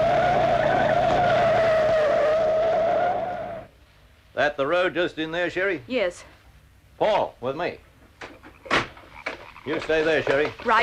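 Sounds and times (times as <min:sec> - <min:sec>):
car tires screeching from hard braking: 0:00.0 - 0:03.7
speech: 0:04.4 - 0:06.4, 0:07.0 - 0:08.4, 0:09.6 - 0:10.8.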